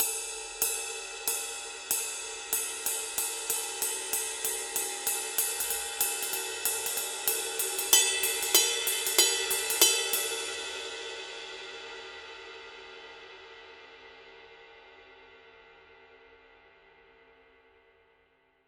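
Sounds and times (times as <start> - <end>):
bronze ride cymbal playing a full ride pattern: 0.0 - 12.0.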